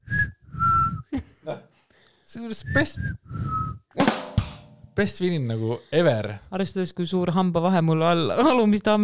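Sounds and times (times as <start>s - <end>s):
weak breathy human whistle: 0.0s - 1.1s, 2.1s - 3.9s
speech: 2.3s - 3.5s, 5.0s - 9.0s.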